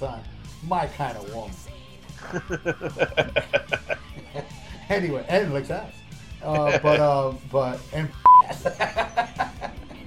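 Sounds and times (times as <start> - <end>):
speech: 0.0 - 9.4
laughter: 2.2 - 4.9, 6.5 - 7.2, 8.4 - 10.0
electronic censor beep: 8.2 - 8.5.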